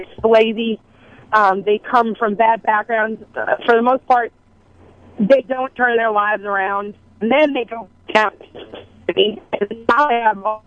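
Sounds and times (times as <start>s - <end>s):
speech: 0.0s - 4.4s, 5.2s - 10.6s
voice through a thin narrow-band phone line breaking up: 1.4s - 4.3s, 5.2s - 10.6s.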